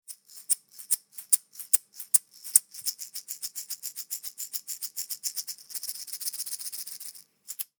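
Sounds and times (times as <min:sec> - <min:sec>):
wooden rhythm shaker: 0:00.0 - 0:07.7.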